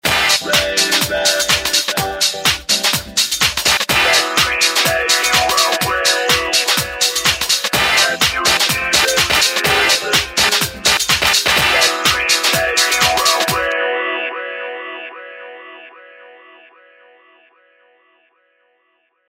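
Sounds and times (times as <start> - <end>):
techno drum mix on a mobile phone: 0.0 - 13.8.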